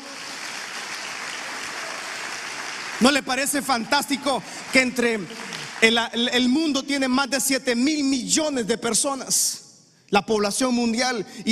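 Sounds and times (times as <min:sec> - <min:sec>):
large crowd applauding: 0:00.0 - 0:06.7
speech: 0:03.0 - 0:11.4.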